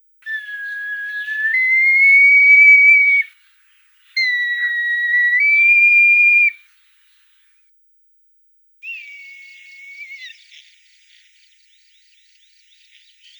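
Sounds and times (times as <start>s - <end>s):
red kite calling: 0.3s - 3.3s, 4.2s - 6.5s.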